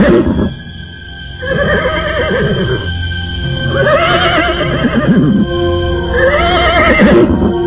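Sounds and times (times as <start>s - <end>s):
horse neighing in a stable: 0.0s - 0.5s, 1.4s - 2.8s, 3.7s - 5.4s, 6.1s - 7.5s.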